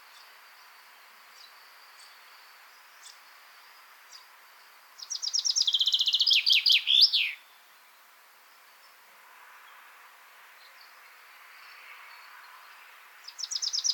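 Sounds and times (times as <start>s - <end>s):
Common chaffinch Fringilla coelebs song of high repeated notes ending in a sharp flourish: 0.0s - 8.0s, 13.2s - 13.9s.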